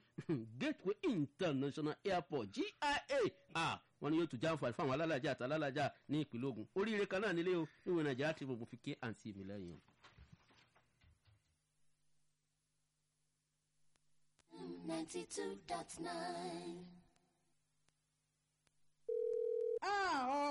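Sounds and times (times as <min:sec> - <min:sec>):
speech: 0:00.2 - 0:09.9, 0:15.0 - 0:17.0, 0:19.8 - 0:20.4
electronic telephone ringing tone: 0:19.1 - 0:19.8.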